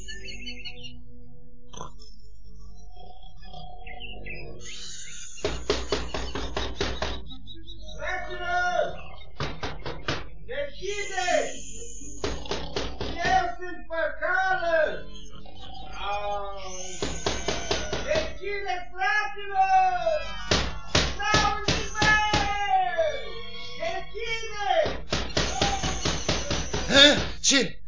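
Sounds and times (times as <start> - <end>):
wavering voiced sounds: 0.0 - 1.1, 1.7 - 27.8
sharp knocking on a wooden door at midnight: 5.4 - 7.3, 9.4 - 10.3, 12.2 - 13.5, 17.0 - 18.4, 20.5 - 22.6, 24.8 - 27.4.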